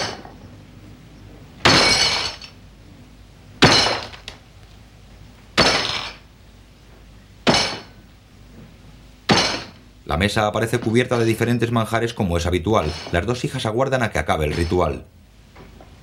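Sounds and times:
cloth-covered clay hen smashed with a hammer: 0:01.6 - 0:02.6, 0:03.6 - 0:04.4, 0:05.6 - 0:06.2, 0:07.4 - 0:08.0, 0:09.3 - 0:09.8
speech: 0:10.1 - 0:15.2.

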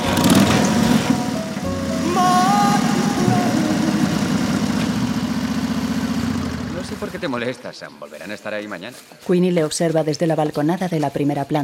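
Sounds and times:
motorcycle engine idling at the garage door of a care home: 0:00.0 - 0:07.3
speech: 0:07.2 - 0:11.6.

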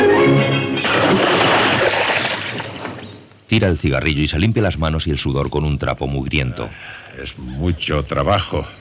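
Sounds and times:
anchor splashing into river water: 0:00.7 - 0:03.2
speech: 0:03.5 - 0:08.8.

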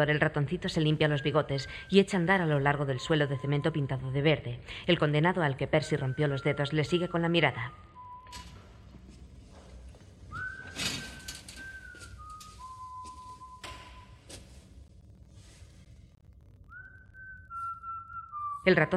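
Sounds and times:
speech: 0:00.0 - 0:08.5, 0:18.6 - 0:18.9
man whistling a slow wavering tune while combing his hair: 0:10.3 - 0:14.0, 0:16.7 - 0:18.7.

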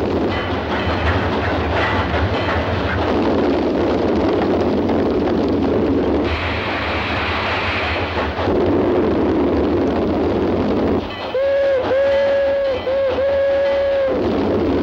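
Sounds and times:
clickety-clack of train wheels on rails: 0:00.0 - 0:14.8
train locomotive approaching on a railway: 0:00.0 - 0:14.8.

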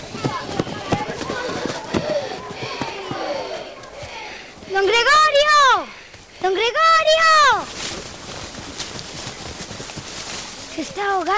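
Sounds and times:
indistinct young voices: 0:00.0 - 0:07.8
footsteps of several children running: 0:00.0 - 0:11.3
speech: 0:06.4 - 0:07.8, 0:10.8 - 0:11.3.

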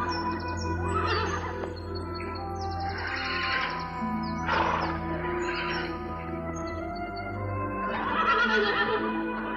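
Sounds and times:
several horses neighing and whinnying in a forest clearing: 0:00.0 - 0:06.9, 0:07.7 - 0:09.5.

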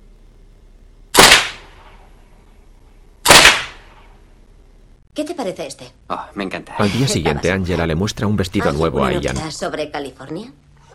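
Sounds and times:
gunshots echoing: 0:01.2 - 0:01.9, 0:03.2 - 0:04.0
speech: 0:05.2 - 0:10.6.

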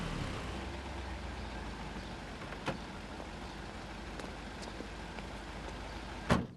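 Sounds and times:
taxi engine idling in front of a house in London: 0:00.0 - 0:06.3
car door shutting as a passenger gets out: 0:06.3 - 0:06.5.

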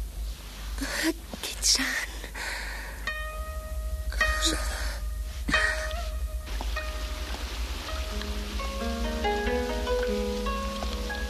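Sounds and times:
steady rain falling at night in a park: 0:00.0 - 0:11.2
speech: 0:01.0 - 0:02.1
sustained musical tones and a gentle melody: 0:02.8 - 0:11.2.

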